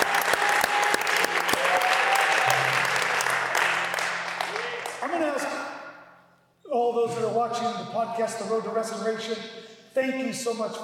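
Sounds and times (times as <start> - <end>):
sizable crowd applauding: 0.0 - 5.6
speech: 7.5 - 10.8.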